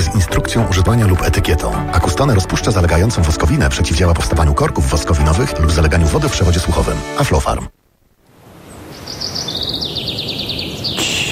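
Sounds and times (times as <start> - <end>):
speech: 0.6 - 7.8
birds singing: 8.6 - 11.3.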